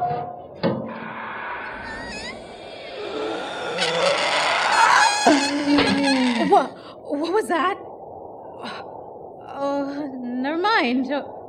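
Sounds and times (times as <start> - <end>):
small hinged door of a green box clicking and creaking open: 0.7 - 6.7
speech: 7.3 - 7.8, 10.8 - 11.4.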